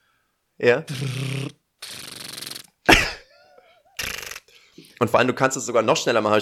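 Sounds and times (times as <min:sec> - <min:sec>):
speech: 0:00.6 - 0:02.0, 0:05.0 - 0:06.4
sharper explosive mouth puff: 0:00.9 - 0:03.2.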